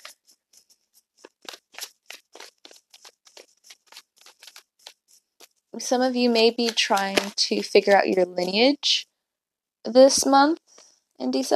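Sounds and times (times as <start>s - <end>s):
tarot cards being shuffled: 0.0s - 8.8s
speech: 5.8s - 9.1s, 9.8s - 10.6s, 11.2s - 11.5s.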